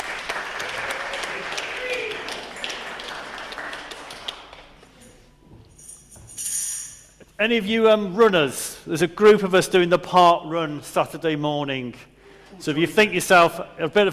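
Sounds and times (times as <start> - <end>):
congregation applauding: 0.0 - 4.8
speech: 7.4 - 14.1.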